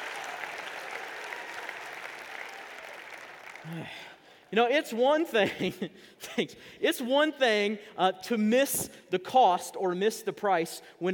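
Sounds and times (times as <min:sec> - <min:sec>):
audience applause: 0:00.0 - 0:03.8
speech: 0:03.6 - 0:11.1.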